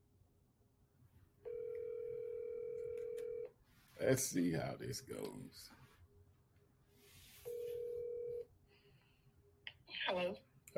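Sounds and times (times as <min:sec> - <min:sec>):
electronic ringback tone of an outgoing phone call: 0:01.4 - 0:03.5, 0:07.4 - 0:08.5
speech: 0:04.0 - 0:05.8, 0:10.1 - 0:10.7.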